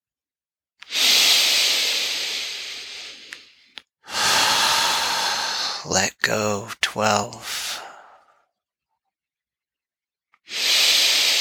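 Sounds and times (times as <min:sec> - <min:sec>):
long exhaling breath during a guided relaxation exercise: 0:00.9 - 0:05.9, 0:10.5 - 0:11.3
speech: 0:05.8 - 0:07.6.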